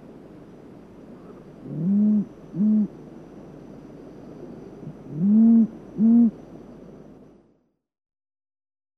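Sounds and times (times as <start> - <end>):
quiet background hiss: 0.0 - 7.8
rufous owl hooting: 1.2 - 3.0, 4.8 - 6.4.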